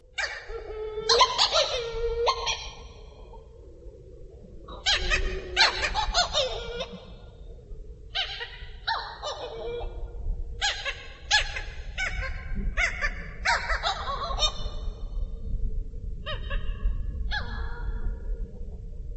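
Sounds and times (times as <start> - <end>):
low rumble: 0.0 - 19.1
Hawaiian petrel cackling calls: 0.2 - 3.4, 4.7 - 7.4, 8.1 - 10.0, 10.6 - 15.0.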